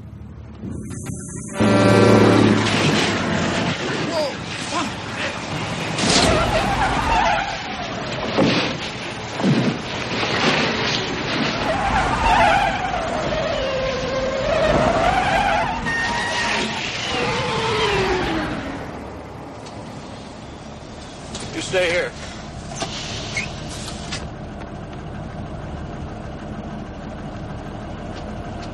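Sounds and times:
car engines roaring in a highway car chase in a movie: 0.0 - 28.7
crashes and bangs in a highway car chase: 0.6 - 12.8
tires squealing in a highway car chase: 0.6 - 24.3.

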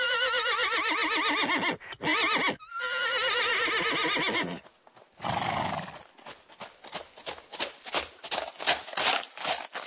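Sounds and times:
white horse whinnying: 0.0 - 4.6, 5.2 - 6.0
horse hoofbeats clip-clopping on a hard surface: 4.5 - 9.8.

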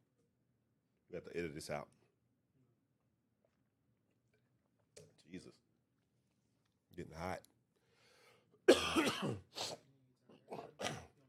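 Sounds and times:
speech: 1.1 - 2.0, 5.3 - 5.6, 7.0 - 7.5, 8.9 - 9.8
person coughing with long harsh hacks: 8.7 - 9.8, 10.5 - 11.2
rough throat-clearing bursts: 8.7 - 11.2.

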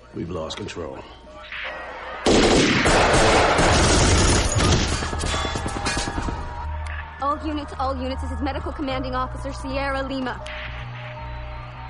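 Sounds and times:
speech: 0.1 - 1.6, 7.2 - 10.6
heavy continuous gunfire: 2.2 - 6.7.

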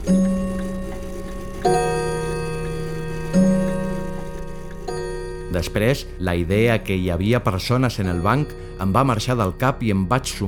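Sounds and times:
old clock striking: 0.0 - 10.4
speech: 5.6 - 10.4.

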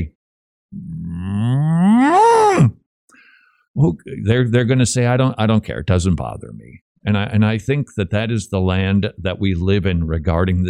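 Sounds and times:
cow mooing: 0.8 - 2.4
speech: 3.8 - 10.6.

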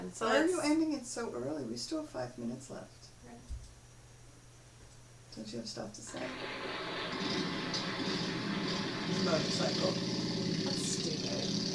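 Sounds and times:
speech: 0.1 - 3.5, 5.3 - 8.4, 9.1 - 10.2
motorcycle engine idling: 8.7 - 11.7.

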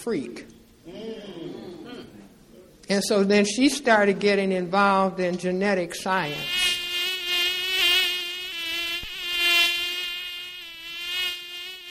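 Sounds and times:
speech: 0.0 - 2.2, 2.9 - 6.7
mosquito buzzing: 6.2 - 11.8.

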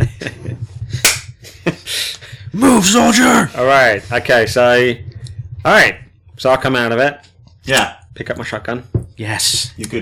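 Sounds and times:
sharp slap: 1.0 - 1.3
speech: 2.6 - 10.0.

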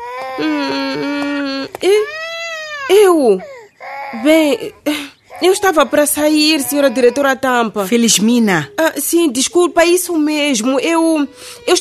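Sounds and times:
baby crying inside a house on a narrow street in Nguva: 0.0 - 7.8, 10.9 - 11.8
speech: 0.4 - 2.2, 2.9 - 3.5, 4.1 - 11.8.

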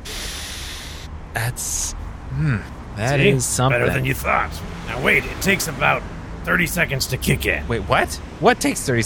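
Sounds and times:
person sniffing beans: 0.0 - 1.1
speech: 1.3 - 9.0.

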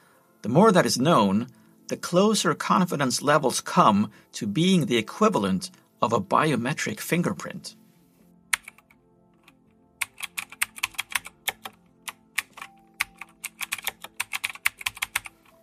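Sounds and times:
speech: 0.4 - 7.8
typing on a computer keyboard: 8.6 - 15.6.

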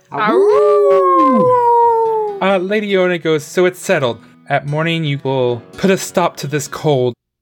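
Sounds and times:
person imitating a wolf howl: 0.0 - 2.5
speech: 0.1 - 1.0, 2.4 - 7.2.

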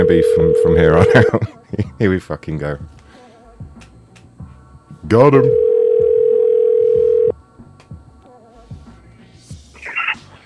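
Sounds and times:
loud steady telephone tone while placing a call: 0.0 - 1.3, 5.5 - 7.3
speech: 0.0 - 3.0, 5.0 - 5.6
laughter: 0.9 - 2.0.

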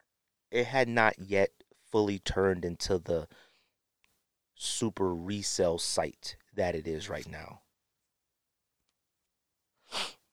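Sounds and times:
speech: 0.5 - 3.5, 4.6 - 7.6
sharp sniff through the nose: 9.8 - 10.3.

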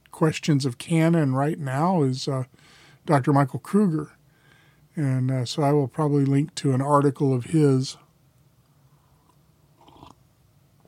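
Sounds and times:
speech: 0.2 - 4.2, 5.0 - 8.0
faint mouth sounds: 9.2 - 10.2
slurping sip of hot coffee: 9.8 - 10.2.

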